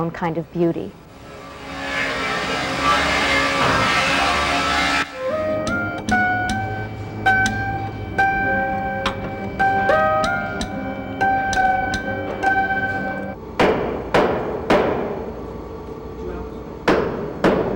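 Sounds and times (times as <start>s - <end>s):
workshop clatter in a piano factory: 1.7s - 15.4s, 16.8s - 17.7s
hammering in a piano factory: 1.8s - 15.2s, 16.9s - 17.7s.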